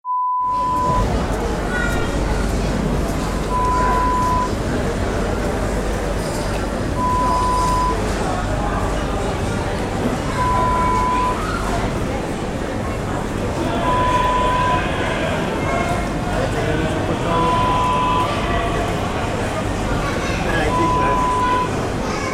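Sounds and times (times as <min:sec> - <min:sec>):
food market ambience: 0:00.4 - 0:22.3.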